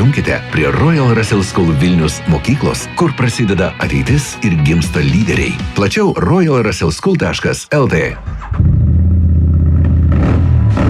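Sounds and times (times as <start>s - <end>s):
speech: 0.0s - 8.7s
motorcycle or scooter engine revving: 8.4s - 10.8s.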